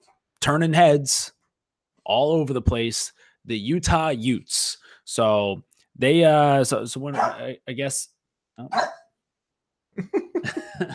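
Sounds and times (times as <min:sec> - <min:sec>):
speech: 0:00.4 - 0:01.4, 0:02.1 - 0:09.0, 0:10.0 - 0:10.9
excited pet dog barking: 0:07.1 - 0:07.4, 0:08.7 - 0:09.1
laughter: 0:10.0 - 0:10.9.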